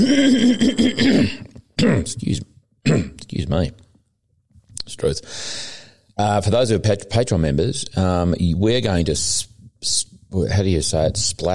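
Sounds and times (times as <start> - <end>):
low voiced throat sound: 0.0 - 2.2, 2.8 - 3.3
person coughing: 0.0 - 2.2, 2.8 - 3.2
speech: 0.0 - 3.8, 5.0 - 11.5.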